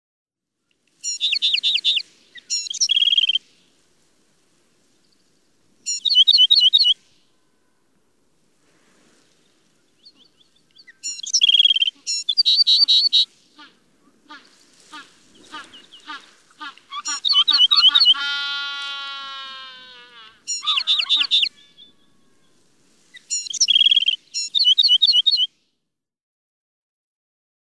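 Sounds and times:
Sedge Wren calling: 1.0 - 25.5.

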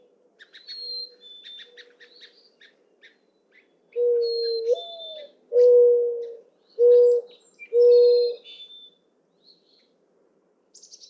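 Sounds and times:
mourning dove cooing: 4.0 - 8.4.

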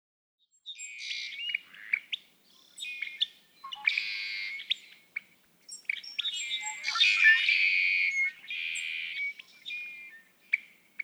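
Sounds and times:
Red-winged blackbird singing buzzy rasping phrases: 0.6 - 11.0.

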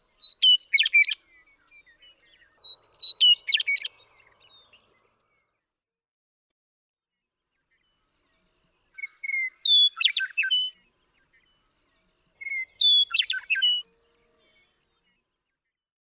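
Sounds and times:
western meadowlark song with whistled notes and bubbling flute-like jumble: 0.0 - 5.6, 7.7 - 15.5.

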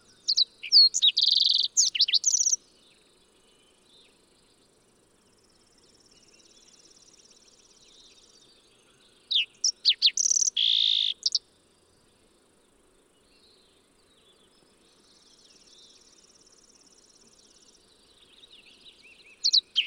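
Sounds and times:
faint bird twittering: 0.0 - 2.6, 5.3 - 11.4, 13.2 - 19.8
fox sparrow song: 0.0 - 4.5, 5.3 - 11.5, 13.3 - 19.8
background hiss: 0.0 - 19.8.

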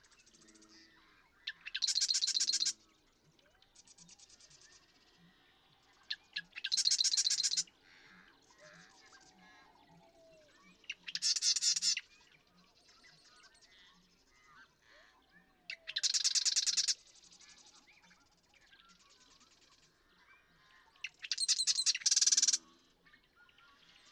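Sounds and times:
Marsh Wren softer chattering: 1.5 - 2.8, 6.6 - 7.6, 11.1 - 12.0, 15.9 - 17.0, 21.1 - 22.6.

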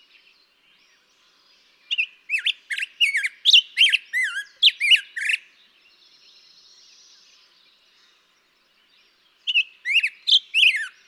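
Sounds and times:
Black-headed grosbeak singing rolling whistled notes in daytime: 1.9 - 5.5, 9.4 - 11.0.

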